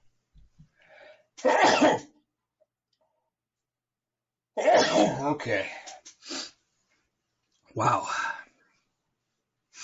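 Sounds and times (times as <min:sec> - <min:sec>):
person sneezing from allergies: 0:01.4 - 0:02.1, 0:04.6 - 0:05.2
speech: 0:05.2 - 0:05.8, 0:07.8 - 0:08.2.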